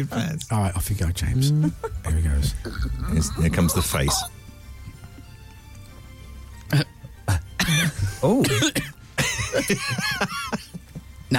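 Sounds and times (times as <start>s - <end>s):
speech: 0.0s - 4.4s, 8.2s - 10.6s
laughter: 1.5s - 2.4s, 9.2s - 11.2s
person coughing after drinking: 2.6s - 4.3s, 6.7s - 9.5s.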